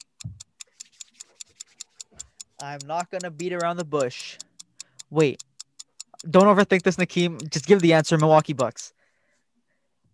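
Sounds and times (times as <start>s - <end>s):
quiz game countdown timer clock ticking: 0.0s - 9.0s
speech: 2.6s - 4.4s, 5.1s - 5.5s, 6.2s - 9.0s.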